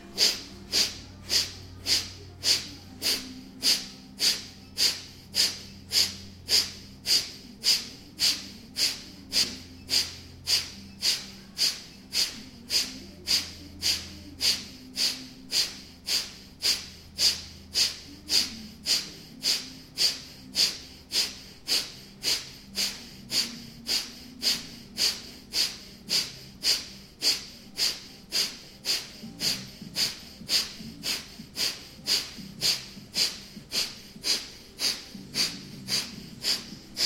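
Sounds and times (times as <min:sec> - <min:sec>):
Kapalabhati yoga breathing, forceful exhalations through the nose: 0:00.0 - 0:37.0.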